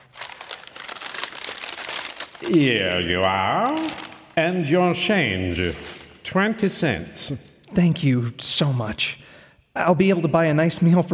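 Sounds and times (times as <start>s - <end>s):
plain paper bag crinkling at a shop counter: 0.0s - 2.8s, 3.6s - 4.4s, 5.6s - 7.2s
speech: 2.4s - 9.2s, 9.8s - 11.1s.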